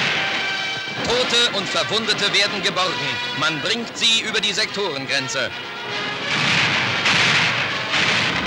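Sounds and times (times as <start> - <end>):
gunshots cracking through the streets: 0.0 - 3.0, 5.9 - 8.4
continuous roar of noise: 0.0 - 8.4
speech: 1.1 - 6.1.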